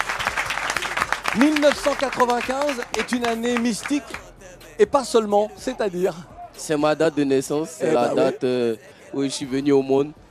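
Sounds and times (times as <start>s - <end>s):
audience applause: 0.0s - 4.2s
speech: 1.4s - 10.2s.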